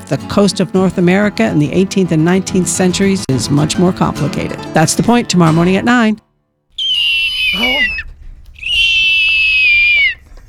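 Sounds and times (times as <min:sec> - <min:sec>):
speech: 0:00.1 - 0:06.2, 0:07.5 - 0:08.1
person vocally imitating a hawk's cry with piercing screeches: 0:06.8 - 0:10.2.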